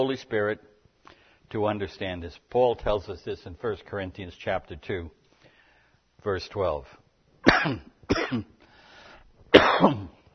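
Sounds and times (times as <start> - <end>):
speech: 0.0 - 5.2, 6.2 - 8.6, 9.5 - 10.2
person clearing throat while pausing mid-reading: 7.4 - 8.6, 9.5 - 10.3.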